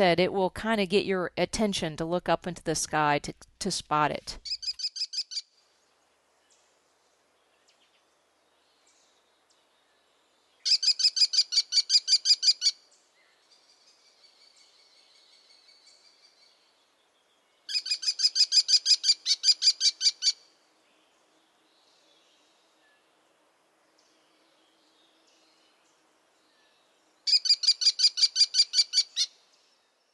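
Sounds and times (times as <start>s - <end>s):
speech: 0.0s - 4.6s
American kestrel shrill high-pitched repeated call: 4.4s - 5.5s, 10.6s - 12.8s, 17.7s - 20.4s, 27.3s - 29.4s.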